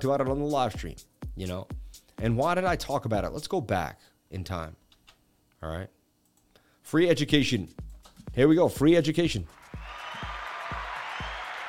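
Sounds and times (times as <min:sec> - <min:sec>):
speech: 0:00.0 - 0:04.8, 0:05.6 - 0:06.0, 0:06.8 - 0:09.6
large crowd applauding and cheering sound effect: 0:09.5 - 0:11.6.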